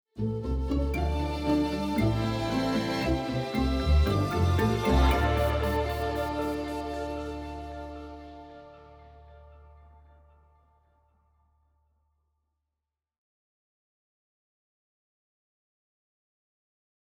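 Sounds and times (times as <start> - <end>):
strings tuning: 0.2 - 10.3.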